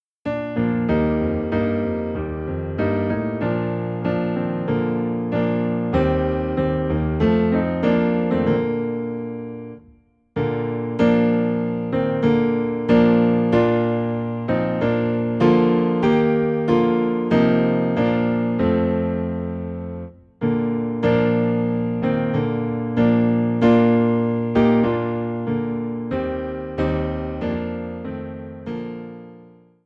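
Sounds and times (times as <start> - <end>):
low piano in B flat playing hymns: 0.2 - 29.8.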